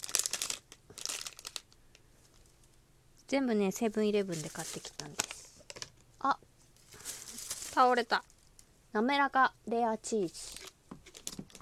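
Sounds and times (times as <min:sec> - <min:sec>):
plastic shopping packaging crinkling and rustling: 0:00.0 - 0:02.7, 0:04.1 - 0:06.1, 0:06.8 - 0:08.7, 0:10.3 - 0:11.6
speech: 0:03.3 - 0:05.3, 0:06.2 - 0:06.5, 0:07.8 - 0:08.3, 0:08.9 - 0:10.6.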